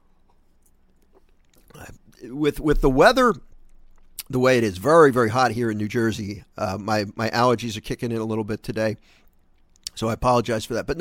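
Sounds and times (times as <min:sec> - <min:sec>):
person sipping and swallowing water: 0:00.6 - 0:04.3
speech: 0:01.9 - 0:03.5, 0:04.3 - 0:09.2, 0:10.0 - 0:10.9.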